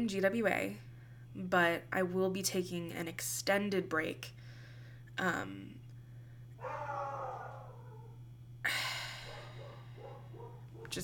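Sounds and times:
speech: 0.0s - 4.4s, 5.2s - 5.8s, 6.6s - 7.5s, 8.6s - 9.0s
steady low electrical hum: 0.0s - 11.0s
dog barking: 6.6s - 8.2s, 9.3s - 11.0s.

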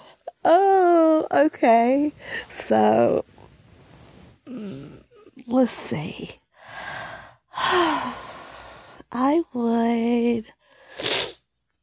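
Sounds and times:
speech: 0.4s - 3.3s, 4.5s - 6.4s, 7.7s - 8.2s, 9.1s - 10.6s
person sniffling into the microphone: 10.8s - 11.4s.

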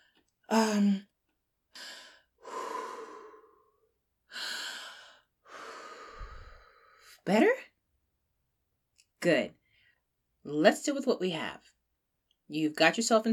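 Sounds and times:
speech: 0.5s - 1.1s, 7.3s - 7.6s, 9.2s - 9.6s, 10.4s - 11.7s, 12.5s - 13.3s
deep breaths taken in and out: 1.7s - 7.2s, 9.6s - 10.1s.

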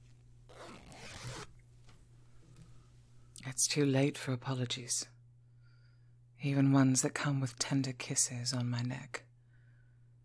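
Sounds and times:
low hum: 0.0s - 10.2s
zipper on a dress being zipped up: 0.5s - 1.6s
speech: 3.6s - 5.2s, 6.4s - 9.3s.

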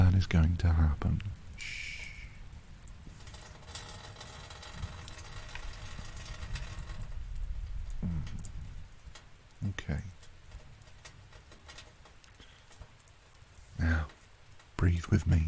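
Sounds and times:
rain pattering on surfaces: 0.0s - 15.4s
speech: 0.3s - 1.9s, 14.9s - 15.4s
low rumble: 1.2s - 9.1s.

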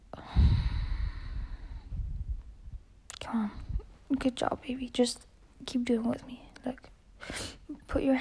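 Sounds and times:
soft low rumble: 0.0s - 7.0s
person breathing in and out deeply: 0.1s - 2.3s
speech: 3.3s - 8.2s.

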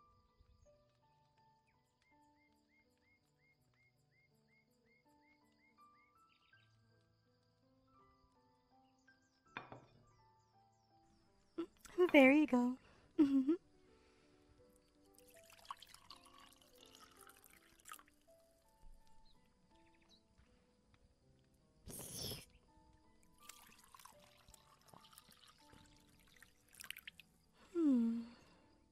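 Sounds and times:
faint tonal background: 4.6s - 28.8s
speech: 12.1s - 13.6s
spring water poured into cups: 15.1s - 18.6s, 23.2s - 27.4s
quiet liquid drips: 15.1s - 19.2s, 23.2s - 27.4s
person sipping spring water from cups: 21.9s - 22.4s
person sighing contentedly: 27.6s - 28.5s.

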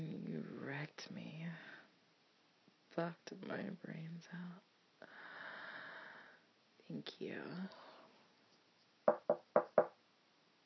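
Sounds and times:
speech: 1.0s - 1.4s, 3.0s - 4.7s, 6.9s - 7.9s
sharp hollow knocking on a door: 9.1s - 10.0s.

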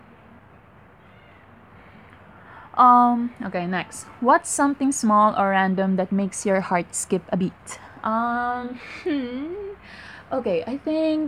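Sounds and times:
low steady room hum: 0.0s - 11.2s
cat meowing softly: 1.0s - 1.5s
speech: 2.8s - 11.2s.

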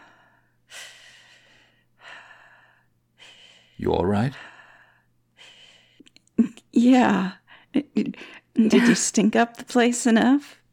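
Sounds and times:
deep breathing from a person being calmed: 0.0s - 6.1s
speech: 3.8s - 4.6s, 6.8s - 10.6s.

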